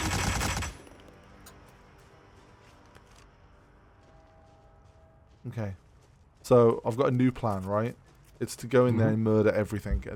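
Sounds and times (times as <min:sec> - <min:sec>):
rapid automatic gunfire with live ammunition in a video game: 0:00.0 - 0:00.8
speech: 0:05.4 - 0:05.8, 0:06.4 - 0:10.1.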